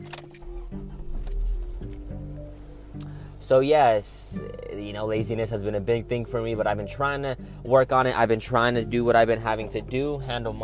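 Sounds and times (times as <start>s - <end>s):
car keys jingling and clinking: 0.0s - 3.4s
car engine turning over and rumbling: 0.0s - 10.6s
speech: 3.5s - 10.6s.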